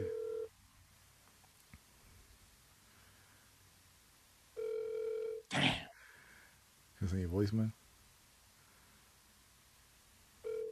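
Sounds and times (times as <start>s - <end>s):
electronic phone ring tone on speakerphone: 0.0s - 0.5s, 4.6s - 5.5s, 10.4s - 10.7s
near-silent hiss: 0.0s - 4.8s, 5.5s - 10.6s
speech: 7.1s - 7.8s.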